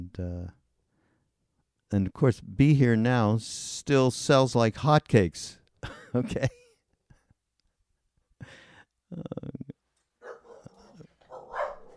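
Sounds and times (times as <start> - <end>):
speech: 0.1 - 0.6, 1.9 - 6.6, 9.1 - 9.7
dog barking: 10.2 - 11.9.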